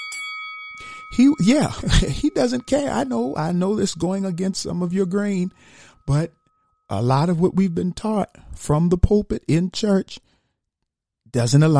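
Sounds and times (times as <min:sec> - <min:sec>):
bell sound effect ringing: 0:00.0 - 0:08.2
speech: 0:00.8 - 0:10.3, 0:11.3 - 0:11.7.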